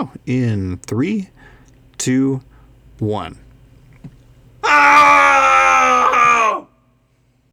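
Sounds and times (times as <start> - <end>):
speech: 0.0 - 3.4, 4.7 - 5.2
cathartic group scream: 4.6 - 6.8.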